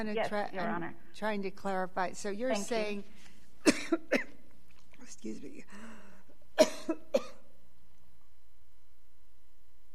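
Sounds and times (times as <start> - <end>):
speech: 0.0 - 4.3, 5.1 - 6.0, 6.6 - 7.3
speaker coughing at a court hearing: 3.6 - 4.4, 6.6 - 7.5.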